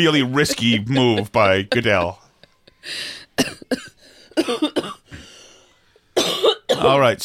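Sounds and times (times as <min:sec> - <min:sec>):
speech: 0:00.0 - 0:02.2, 0:02.8 - 0:03.8, 0:04.4 - 0:04.8, 0:06.8 - 0:07.2
laughter: 0:00.2 - 0:02.9
harsh coughing: 0:00.4 - 0:02.2, 0:03.2 - 0:05.4, 0:06.2 - 0:07.0
breathy wheezing gasps: 0:02.8 - 0:03.4, 0:04.0 - 0:04.4, 0:05.0 - 0:06.0.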